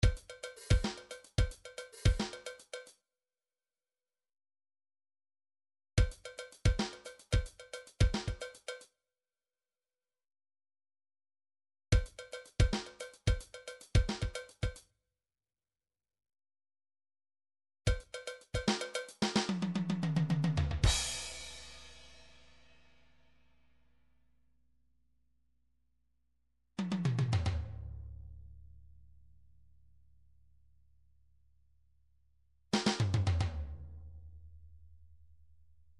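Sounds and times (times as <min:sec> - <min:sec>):
midi drums: 0:00.0 - 0:02.7, 0:06.0 - 0:08.7, 0:12.0 - 0:14.8, 0:17.9 - 0:22.0, 0:32.8 - 0:33.7.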